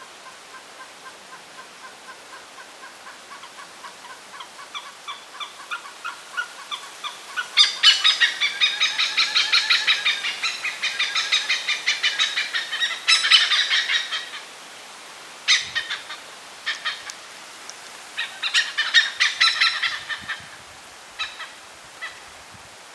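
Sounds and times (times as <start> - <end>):
oriental pied hornbill calling: 2.1 - 14.5, 15.5 - 17.2, 18.2 - 20.4.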